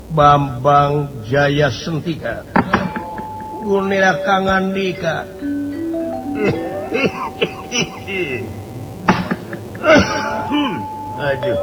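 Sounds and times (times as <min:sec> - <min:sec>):
speech: 0:00.1 - 0:02.9, 0:03.6 - 0:05.6, 0:06.4 - 0:08.6, 0:09.8 - 0:11.6
laughter: 0:00.2 - 0:11.6
voiced grunts: 0:00.8 - 0:11.6
throat-clearing bursts: 0:02.2 - 0:04.2, 0:06.3 - 0:11.6
harsh coughs in a staged performance: 0:02.2 - 0:05.4, 0:06.4 - 0:11.6.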